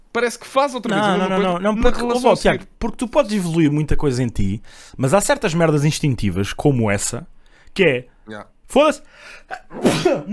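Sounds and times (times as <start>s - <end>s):
speech: 0.2s - 10.3s
sneeze: 9.5s - 10.3s.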